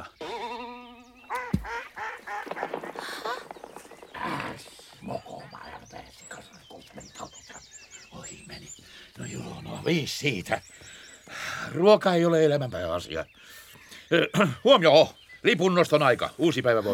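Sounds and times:
several ducks quacking and honking: 0.0 - 7.6
speech: 9.8 - 10.7, 11.7 - 16.9.

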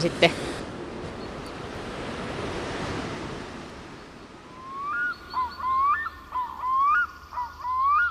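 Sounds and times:
speech: 0.0 - 0.5
rushing water of a small waterfall and rapids: 0.0 - 7.4
rhythmic repeated whistling chirps: 4.5 - 8.0.

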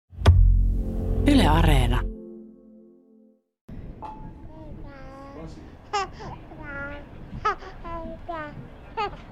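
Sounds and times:
speech: 1.2 - 2.1
baby babbling and squealing among travelling passengers: 4.6 - 9.2.

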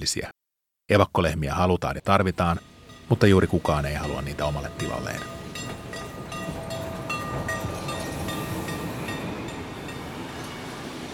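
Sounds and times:
speech: 0.0 - 5.4
train rumbling along the tracks: 2.4 - 11.1.

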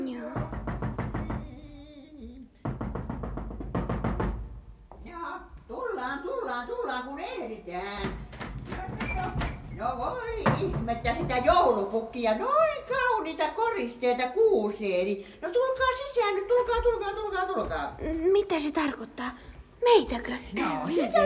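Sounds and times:
knocking on a door: 0.3 - 1.8, 2.6 - 5.2, 7.9 - 12.0
speech: 6.6 - 8.2, 9.3 - 21.2.

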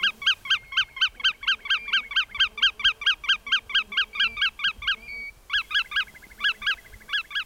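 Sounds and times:
black-tailed godwit males calling: 0.0 - 7.4.

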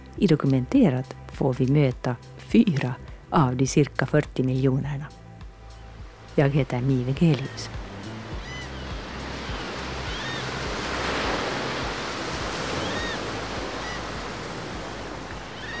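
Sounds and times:
speech: 0.2 - 5.2, 6.4 - 7.8
ocean waves breaking and washing: 5.6 - 15.7
faint bird calls: 7.4 - 10.9, 12.5 - 14.5, 15.3 - 15.7.

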